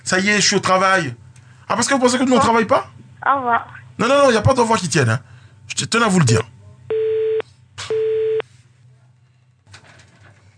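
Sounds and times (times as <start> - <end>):
speech: 0.1 - 6.5
telephone busy signal after hanging up: 6.9 - 8.4.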